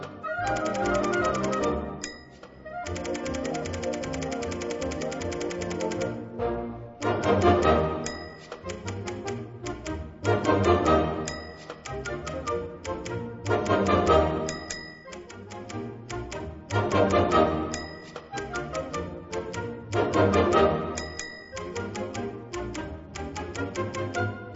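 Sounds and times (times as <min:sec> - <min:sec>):
rapid typewriter clacking: 0:00.4 - 0:06.2, 0:07.0 - 0:10.6, 0:11.3 - 0:20.4, 0:21.0 - 0:24.3
bright typewriter carriage-return bell ding: 0:00.5 - 0:06.1, 0:08.0 - 0:09.4, 0:11.2 - 0:12.1, 0:14.5 - 0:15.5, 0:17.7 - 0:18.8, 0:21.0 - 0:22.2.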